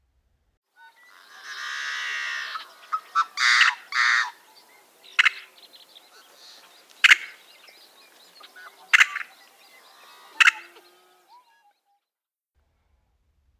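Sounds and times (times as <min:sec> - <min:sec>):
yellow-headed blackbird sharp metallic chips: 0:02.8 - 0:10.8.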